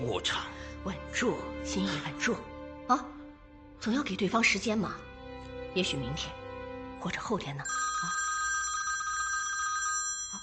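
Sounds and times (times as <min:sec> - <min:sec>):
speech: 0:00.0 - 0:03.2, 0:03.8 - 0:05.1, 0:05.8 - 0:06.4, 0:07.0 - 0:08.2
telephone ringing with a rapid electronic trill: 0:07.7 - 0:10.4.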